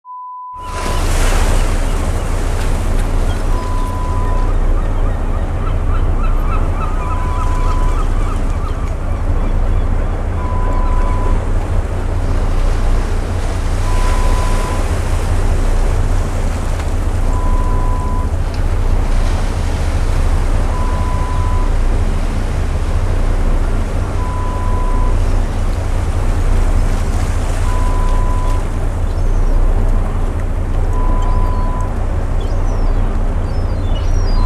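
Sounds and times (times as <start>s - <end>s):
fishing boat: 0.5s - 34.4s.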